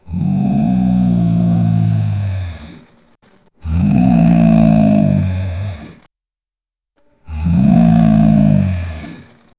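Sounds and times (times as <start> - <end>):
tiger growling: 0.0 - 2.9, 3.6 - 6.1, 7.3 - 9.4.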